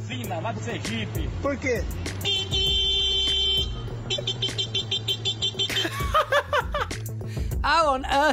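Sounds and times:
speech: 0.1 - 2.4, 7.7 - 8.3
man vocally mimicking a car horn with honks and short beeps: 2.2 - 6.0
laughter: 5.7 - 7.0.

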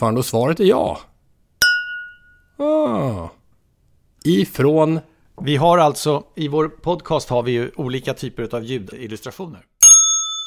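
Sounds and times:
speech: 0.0 - 1.1, 2.6 - 3.4, 4.2 - 9.7
drinking glasses clinking together: 1.6 - 2.4, 9.8 - 10.4
short loud vocal sound with a falling pitch: 2.6 - 3.4.

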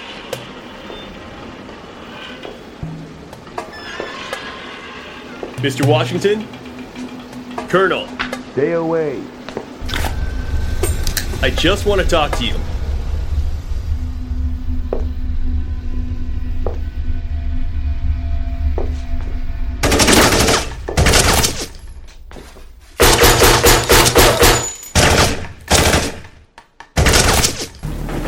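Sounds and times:
low hum: 0.0 - 23.9
speech: 5.6 - 6.6, 7.7 - 9.4, 11.4 - 12.7
gunshots fired inside a house: 23.0 - 26.3, 27.0 - 27.8.

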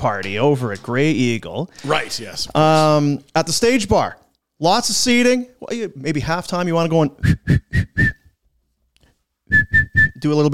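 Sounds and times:
speech: 0.0 - 7.7, 10.2 - 10.5
person whistling short high steady notes: 7.2 - 8.4, 9.5 - 10.2.

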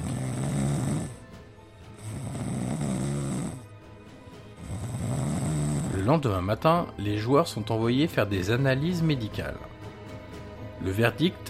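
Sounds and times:
man snoring loudly with rattling breaths: 0.0 - 1.3, 1.9 - 3.8, 4.5 - 6.2
speech: 6.1 - 9.7, 10.8 - 11.4.

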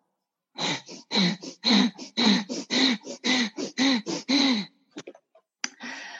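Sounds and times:
bhastrika yoga breathing with forceful bellows breaths: 0.6 - 4.8.

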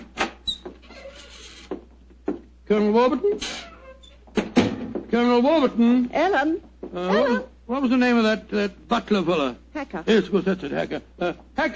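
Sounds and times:
unlocked house door creaking open: 0.2 - 1.8, 3.4 - 4.8
speech: 2.7 - 3.7, 5.1 - 11.7.

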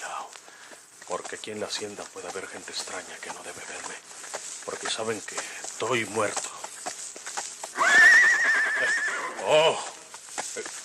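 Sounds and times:
soft horse hoof clops: 0.0 - 10.8
speech: 1.1 - 6.5, 9.5 - 9.9
horse neighing: 7.7 - 10.0.

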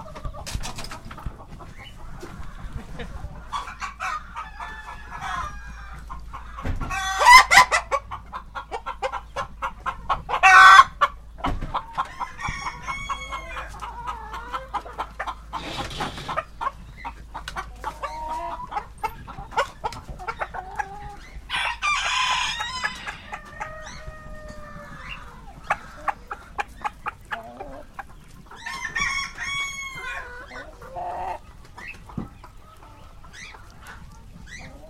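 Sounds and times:
rooster making low throaty clucking calls: 0.0 - 34.8.

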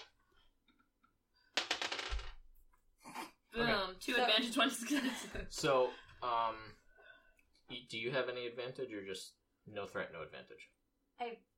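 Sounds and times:
dice rolling and clattering across a surface: 1.6 - 2.4
speech: 4.0 - 6.8, 7.7 - 11.5.

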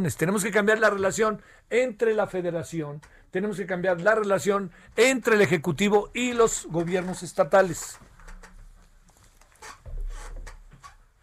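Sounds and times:
speech: 0.0 - 8.1
chair creaking and scraping: 6.1 - 11.2.

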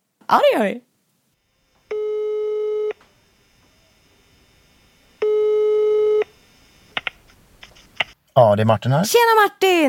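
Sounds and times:
speech: 0.3 - 0.9, 8.4 - 9.8
outgoing phone call ringing tone: 1.6 - 6.9.

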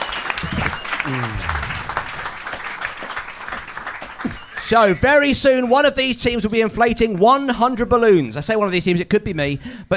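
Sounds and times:
audience clapping at a comedy game show: 0.0 - 5.9
audience laughter at a comedy game show: 0.3 - 2.4
speech: 1.1 - 1.6, 4.7 - 9.9.

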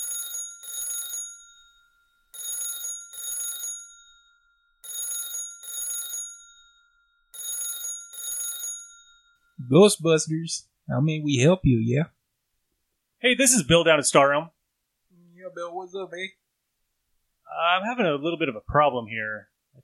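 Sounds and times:
telephone ringing in a double-ring pattern: 0.0 - 9.6
speech: 9.7 - 12.2, 13.2 - 14.6, 15.5 - 16.4, 17.5 - 19.8.

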